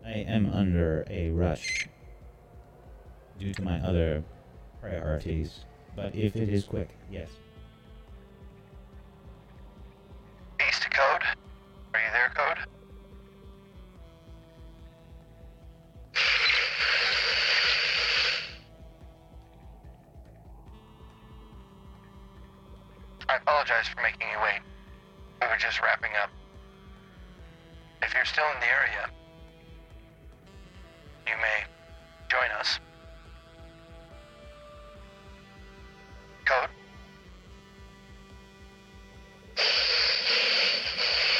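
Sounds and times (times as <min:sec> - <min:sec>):
speech: 0:00.2 - 0:01.9, 0:03.4 - 0:07.4
steady electronic hum: 0:01.1 - 0:41.3
radio static: 0:10.6 - 0:11.4, 0:12.0 - 0:12.7, 0:16.2 - 0:18.6, 0:23.2 - 0:24.6, 0:25.4 - 0:26.3, 0:28.0 - 0:29.1, 0:31.3 - 0:31.7, 0:32.3 - 0:32.8, 0:36.5 - 0:36.7, 0:39.6 - 0:41.3
crackly garbled noise: 0:39.6 - 0:41.3.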